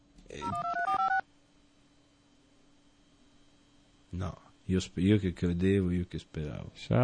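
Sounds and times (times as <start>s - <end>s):
telephone keypad dialing tones: 0.4s - 1.2s
speech: 4.2s - 7.0s.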